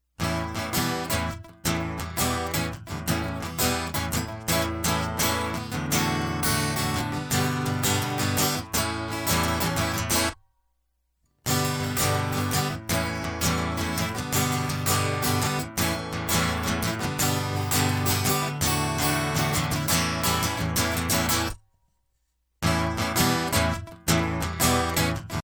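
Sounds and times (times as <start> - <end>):
guitar loop: 0.2 - 10.4, 11.4 - 21.6, 22.6 - 25.4.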